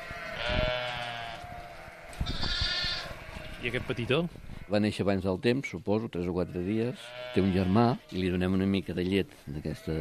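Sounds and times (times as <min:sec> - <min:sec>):
sheep bleating in a barn: 0:00.0 - 0:04.9, 0:06.3 - 0:08.5, 0:09.4 - 0:09.9
speech: 0:03.6 - 0:09.9.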